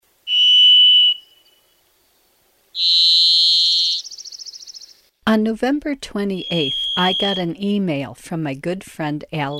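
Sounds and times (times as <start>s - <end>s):
varied thrush buzzy whistled song: 0.2s - 1.8s, 2.8s - 5.0s, 6.4s - 7.6s
speech: 5.3s - 9.5s.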